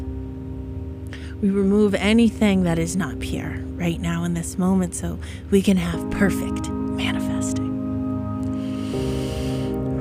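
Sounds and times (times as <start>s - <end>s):
steady sustained musical drone: 0.0s - 9.9s
speech: 1.4s - 7.3s
slow deep breath in and out: 8.5s - 9.9s.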